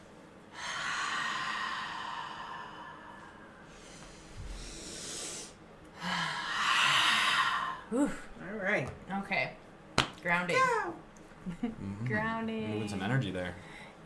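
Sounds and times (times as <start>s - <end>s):
people inhaling deeply during a guided breathing exercise: 0.5s - 8.1s
speech: 7.9s - 9.6s, 10.2s - 14.0s.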